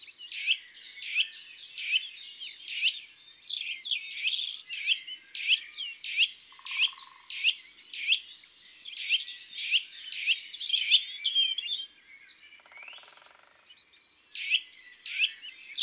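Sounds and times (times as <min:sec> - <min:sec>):
nuthatch singing in woods and forests: 0:00.3 - 0:11.9, 0:12.6 - 0:13.7, 0:14.3 - 0:15.8.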